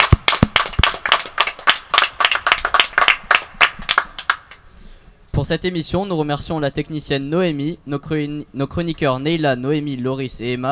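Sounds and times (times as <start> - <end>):
audience applause: 0.0 - 4.5
speech: 5.4 - 10.7.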